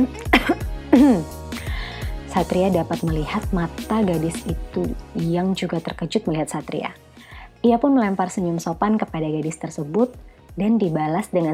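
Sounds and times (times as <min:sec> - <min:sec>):
speech: 0:00.0 - 0:00.3, 0:01.0 - 0:01.4, 0:02.3 - 0:07.0, 0:07.6 - 0:11.5
person coughing with a choking quality: 0:00.0 - 0:01.3.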